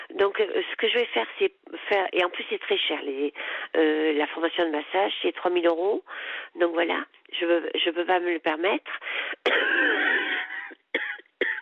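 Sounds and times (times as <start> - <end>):
speech: 0.1 - 10.1
smoker coughing harshly: 9.4 - 11.6.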